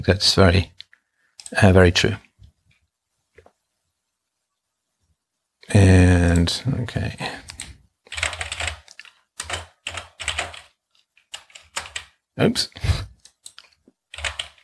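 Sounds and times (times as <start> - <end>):
speech: 0.0 - 0.8, 1.5 - 2.2, 5.7 - 7.4, 12.4 - 13.0
loud clattery typing on a computer keyboard: 7.4 - 12.2, 13.2 - 14.6.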